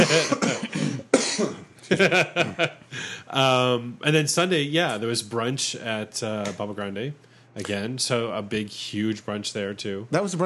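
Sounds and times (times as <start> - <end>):
speech: 0.0 - 0.4, 1.9 - 10.4
laughter: 0.0 - 0.5, 1.8 - 3.2
person coughing in rough throaty bursts: 0.0 - 1.7.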